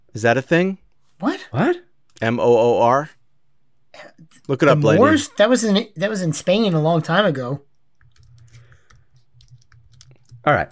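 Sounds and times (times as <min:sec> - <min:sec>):
speech: 0:00.2 - 0:03.2, 0:04.0 - 0:07.7, 0:10.4 - 0:10.7
fingers typing rapidly on a computer keyboard: 0:07.9 - 0:10.5.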